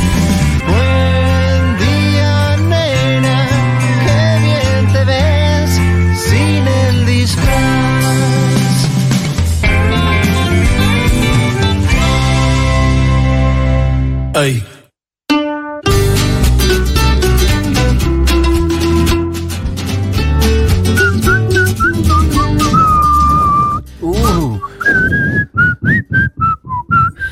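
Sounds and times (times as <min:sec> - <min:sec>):
music: 0:00.0 - 0:14.5, 0:15.3 - 0:24.8
person whistling loudly: 0:20.9 - 0:27.2.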